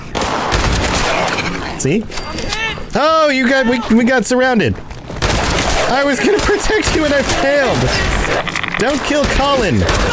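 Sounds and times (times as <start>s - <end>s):
video game gunfire while shooting ghouls: 0.1s - 1.3s, 5.2s - 10.1s
speech: 1.8s - 2.2s, 2.9s - 4.9s, 5.9s - 10.1s.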